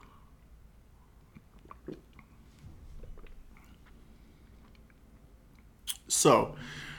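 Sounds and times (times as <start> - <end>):
person quietly sipping coffee: 1.0 - 5.0
louder gulp: 1.4 - 4.0
speech: 6.2 - 6.8.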